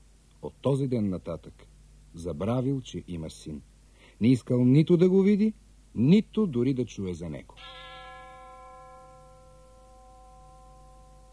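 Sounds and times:
speech: 0:00.4 - 0:07.8
castle bell tolling: 0:07.6 - 0:11.3.

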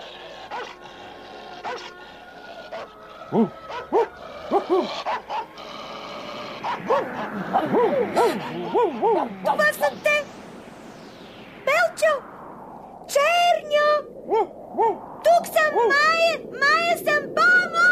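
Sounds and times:
steady hum: 0:00.0 - 0:17.8
large guard dogs barking: 0:00.4 - 0:05.7
speech: 0:03.3 - 0:03.6, 0:07.4 - 0:10.3.

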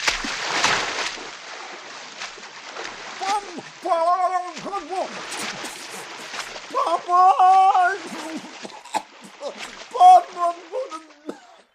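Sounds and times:
heavy splash of someone falling into river: 0:00.0 - 0:11.1
people crying out: 0:06.7 - 0:11.4.

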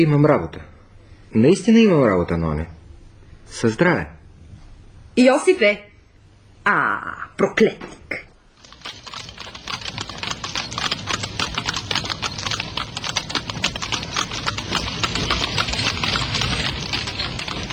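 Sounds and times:
speech: 0:00.0 - 0:00.7, 0:01.3 - 0:02.8, 0:03.5 - 0:04.2, 0:05.2 - 0:05.9, 0:06.6 - 0:08.2
horse hooves clip-clopping at a brisk pace: 0:08.6 - 0:17.7.

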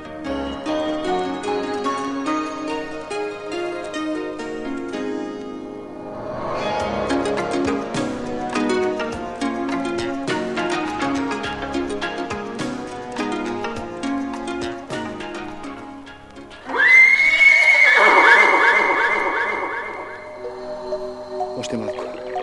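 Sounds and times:
melodic music: 0:00.4 - 0:16.6
white horse neighing: 0:16.6 - 0:20.3.

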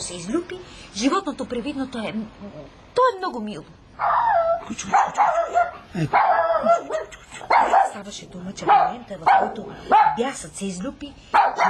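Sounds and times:
speech: 0:00.1 - 0:11.6
small dog barking in high-pitched yaps: 0:04.0 - 0:08.0, 0:08.6 - 0:10.4, 0:11.3 - 0:11.6.

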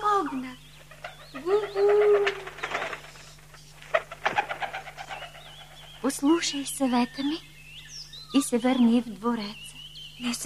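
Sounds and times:
dove cooing: 0:00.0 - 0:06.7
fluttery bird sounds: 0:00.0 - 0:10.4
steady low hum: 0:00.0 - 0:10.4
speech: 0:06.1 - 0:07.5, 0:08.3 - 0:09.6, 0:10.2 - 0:10.4.

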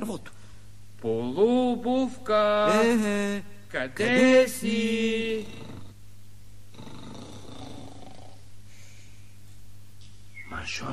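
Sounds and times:
speech: 0:00.0 - 0:00.4, 0:01.0 - 0:05.5
person snoring inside a tree hollow: 0:05.3 - 0:06.0, 0:06.7 - 0:08.4.

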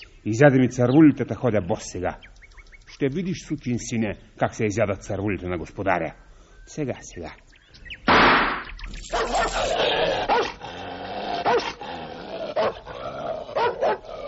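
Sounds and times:
speech: 0:00.2 - 0:02.3, 0:03.0 - 0:07.4
rabid dog barking and growling: 0:09.0 - 0:14.2.

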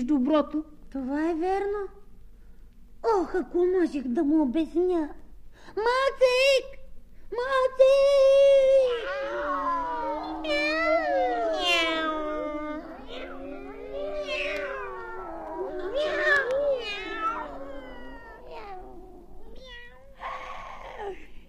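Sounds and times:
speech: 0:00.0 - 0:02.0, 0:03.0 - 0:10.7
crowd of cats meowing and yowling: 0:08.8 - 0:21.1.

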